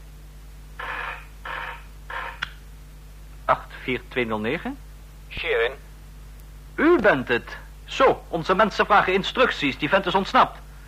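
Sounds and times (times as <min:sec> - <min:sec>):
steady low electrical hum: 0:00.0 - 0:10.8
telephone ringing: 0:00.8 - 0:02.4
speech: 0:03.5 - 0:05.9, 0:06.8 - 0:10.6.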